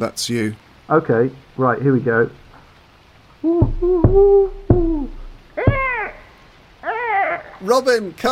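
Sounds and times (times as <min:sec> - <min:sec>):
speech: 0:00.0 - 0:02.4, 0:03.4 - 0:04.9, 0:07.6 - 0:08.2
person imitating screech owl hoots: 0:03.4 - 0:07.7.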